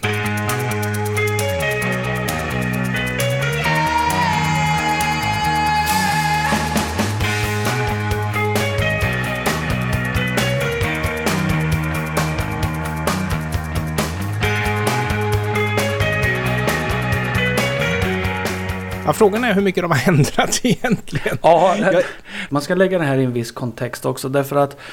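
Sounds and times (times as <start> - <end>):
1982 full-band rock song with driving repeating riff and steady beat: 0.0 - 19.1
speech: 19.2 - 24.9
laughter: 19.9 - 22.3.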